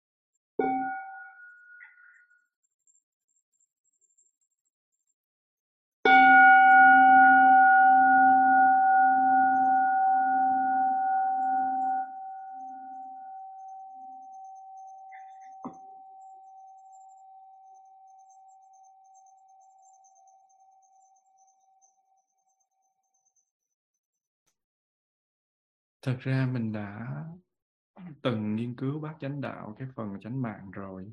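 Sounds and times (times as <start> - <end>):
meditation bell tapped and struck in a quiet room: 0.6 - 2.2, 6.1 - 19.4
speech: 26.0 - 27.4, 28.0 - 31.1.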